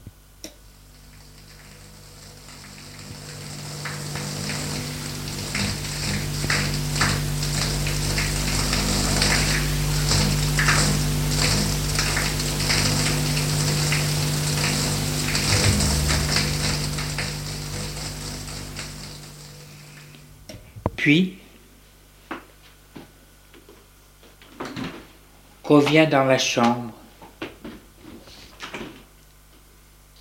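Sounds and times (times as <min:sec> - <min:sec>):
shower water running: 0:00.6 - 0:20.4
speech: 0:21.1 - 0:21.4, 0:25.7 - 0:27.0.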